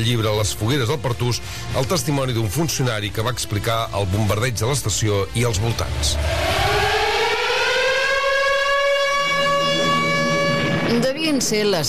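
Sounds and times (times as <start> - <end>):
speech: 0.0 - 6.7, 10.9 - 11.8
air raid siren wailing: 5.9 - 11.6.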